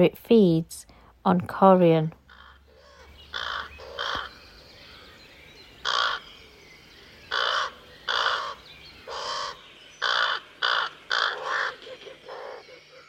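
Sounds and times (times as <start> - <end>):
speech: 0.0 - 2.2
raven croaking caws: 2.3 - 4.4, 5.8 - 6.3, 7.3 - 13.0.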